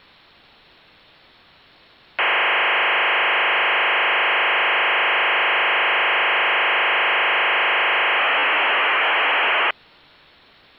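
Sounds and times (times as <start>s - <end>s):
4G phone call: 2.2s - 9.7s.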